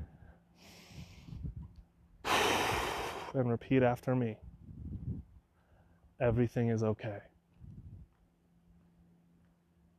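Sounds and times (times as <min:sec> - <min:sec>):
slow deep breath during a guided exercise: 0:00.0 - 0:01.5, 0:02.2 - 0:03.4
speech: 0:03.3 - 0:04.5, 0:06.2 - 0:07.3.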